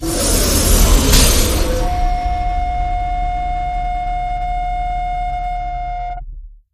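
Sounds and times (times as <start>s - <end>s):
impact hit: 0.0s - 6.0s.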